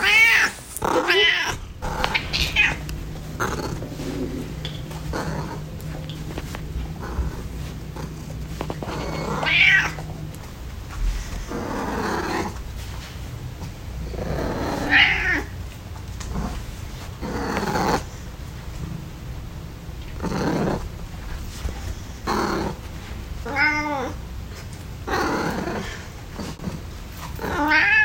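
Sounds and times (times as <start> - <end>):
cat meowing and caterwauling: 0.0 - 2.8, 8.9 - 10.1, 14.8 - 15.5, 23.4 - 24.2, 27.4 - 28.0
cat growling low: 0.0 - 10.3, 11.3 - 12.6, 14.0 - 15.5, 17.2 - 18.1, 20.2 - 20.9, 22.2 - 22.8, 23.4 - 24.2, 25.0 - 28.0.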